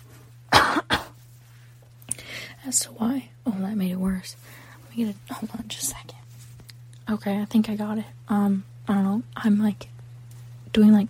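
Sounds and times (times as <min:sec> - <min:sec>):
faint steady electrical hum: 0:00.0 - 0:11.0
person clearing throat close to the microphone: 0:00.5 - 0:01.2
speech: 0:02.6 - 0:06.2, 0:07.1 - 0:09.9, 0:10.8 - 0:11.0.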